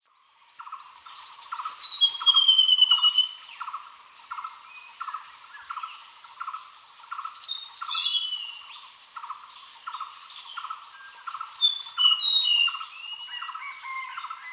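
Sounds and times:
shrill insect hum: 0.1 - 14.5
hill blue flycatcher singing bright tumbling whistled phrases: 1.5 - 3.4, 7.1 - 8.6, 11.0 - 14.5.

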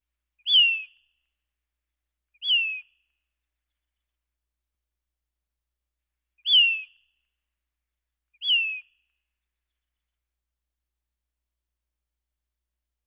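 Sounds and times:
Say's phoebe calling with a short down-slurred whistled note: 0.5 - 1.0, 2.4 - 2.9, 6.4 - 7.0, 8.4 - 8.9.

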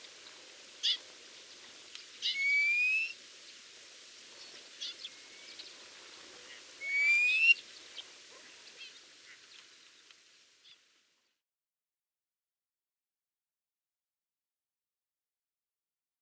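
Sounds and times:
low background hiss: 0.0 - 11.4
thick-billed lark singing drawn-out rising whistles with buzzy overtones: 2.2 - 3.2, 6.8 - 7.6.

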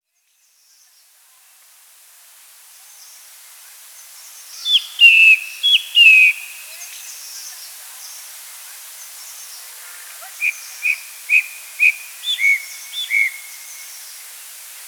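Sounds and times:
light background hiss: 0.1 - 14.8
chestnut thrush singing whistled phrases: 4.7 - 6.7, 10.4 - 14.0.

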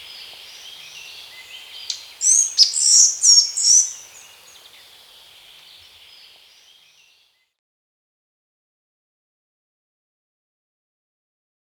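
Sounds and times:
Collared flycatcher song: 0.0 - 7.3.

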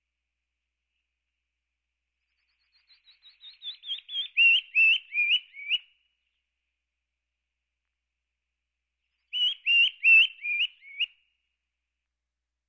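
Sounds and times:
Canyon wren singing a falling series of whistled notes: 2.3 - 5.9, 9.2 - 11.2.

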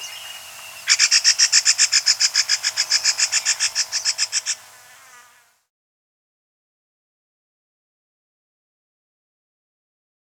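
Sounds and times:
rusty-cheeked scimitar babbler chattering call: 0.0 - 4.6.

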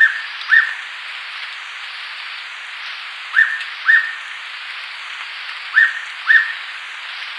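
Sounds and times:
background hiss: 0.0 - 7.3
Hooded pitta two-note whistled song: 3.4 - 4.2, 5.7 - 6.6.

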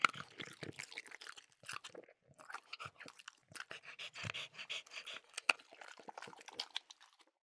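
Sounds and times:
French bulldog eating with crunching and chewing clicks: 0.0 - 7.4
French bulldog panting: 2.8 - 6.6.

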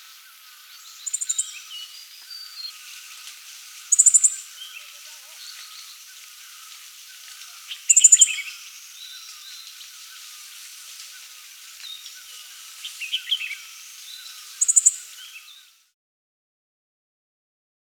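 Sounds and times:
faint bird twitters: 0.0 - 3.2, 3.8 - 15.8
background hiss: 0.0 - 16.0
dark-sided flycatcher high-pitched song: 0.7 - 2.8, 3.9 - 6.0, 7.6 - 9.8, 11.8 - 15.8.

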